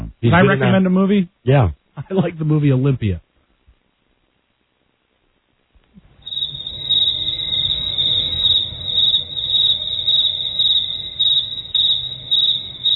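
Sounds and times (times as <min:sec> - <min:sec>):
low hum: 0:00.0 - 0:12.9
speech: 0:00.2 - 0:03.2
crickets chirping at night: 0:05.9 - 0:12.9.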